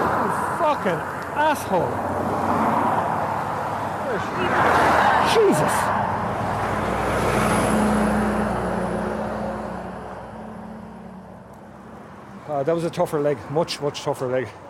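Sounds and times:
fast heavy road traffic roaring past cyclists on a narrow road: 0.0 - 14.6
speech: 0.7 - 2.6, 4.1 - 6.0, 12.5 - 14.6
man letting out a brief startled shout: 4.0 - 5.9.

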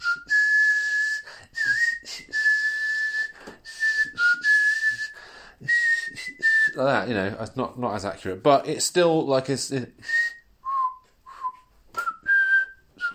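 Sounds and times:
high-pitched human mouth whistling: 0.0 - 6.8, 10.0 - 13.1
speech: 6.8 - 10.1.

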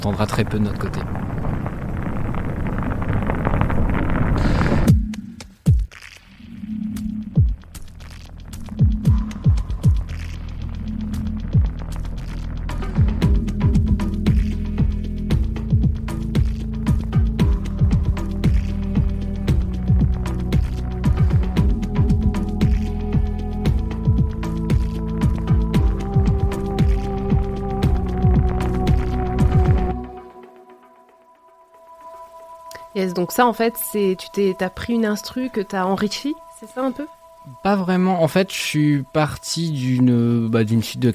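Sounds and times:
speech: 0.0 - 1.2, 33.2 - 41.1
dense rumbling drone: 0.0 - 5.6, 6.3 - 31.0
pulsing bass notes: 0.0 - 31.3
crisp rhythmic clicks: 1.9 - 31.2, 31.8 - 41.1
instrumental electronic groove of a podcast theme tune: 4.4 - 41.1.

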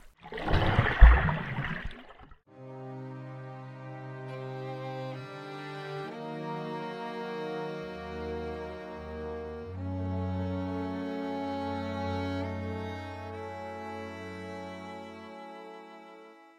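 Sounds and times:
person diving into pitch-black water: 0.0 - 2.4
low sustained musical drone with shifting held tones: 2.6 - 15.7.

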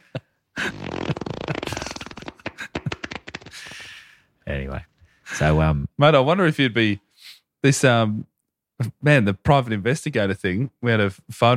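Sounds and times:
loud wet sputtering fart sound effects: 0.6 - 3.6
speech: 4.6 - 7.0, 7.6 - 11.5.

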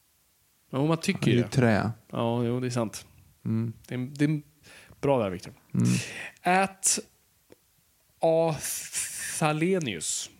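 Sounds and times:
speech: 0.7 - 7.1, 8.2 - 10.3
person sneezing: 5.8 - 6.3.

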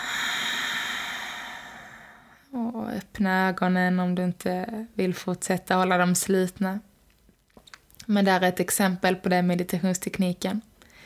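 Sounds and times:
slow airy exhale: 0.0 - 2.5
speech: 3.2 - 6.9, 8.1 - 10.7.

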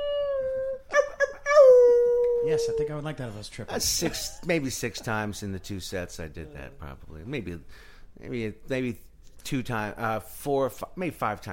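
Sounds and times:
person imitating a wolf howl: 0.0 - 2.9
speech: 2.4 - 11.5.

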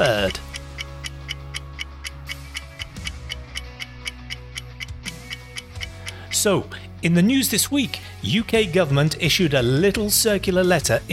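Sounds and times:
speech: 0.0 - 0.5, 6.4 - 11.1
clock ticking: 0.0 - 6.7.

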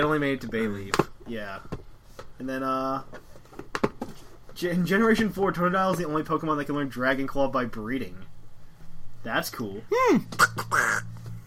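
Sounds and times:
speech: 0.0 - 1.8, 2.4 - 3.2, 4.6 - 8.3, 9.2 - 11.1
faint steady hum: 0.0 - 11.4
person imitating a cartoon duck with raspy quacks: 10.2 - 11.2.

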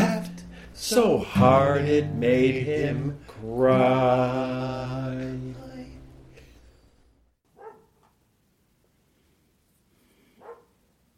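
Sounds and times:
speech: 0.8 - 5.6
dog barking: 7.5 - 8.0, 10.4 - 10.8.

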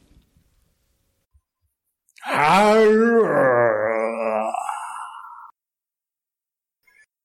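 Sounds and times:
human voice imitating a lion roaring and yawning: 2.2 - 5.5.

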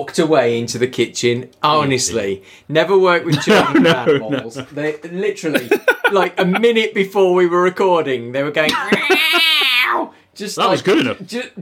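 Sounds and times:
speech: 0.0 - 11.6
laughter: 3.3 - 4.8, 5.5 - 6.8, 8.7 - 9.8
person imitating a cat meowing: 8.8 - 10.1.

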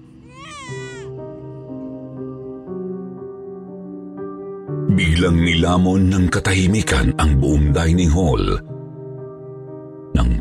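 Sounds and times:
baby wailing and sobbing: 0.1 - 1.2
speech: 5.0 - 8.7.

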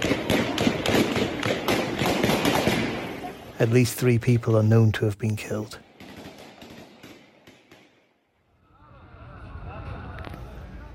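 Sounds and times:
rapid gunshots fired into a crowd: 0.0 - 3.2, 5.9 - 8.0
speech: 3.6 - 5.9.

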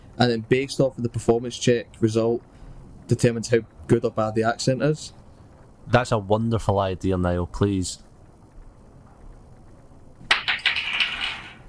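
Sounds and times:
speech: 0.2 - 2.5, 3.1 - 5.2, 5.9 - 8.1
dice rolling loudly on a hard surface: 10.2 - 11.6.

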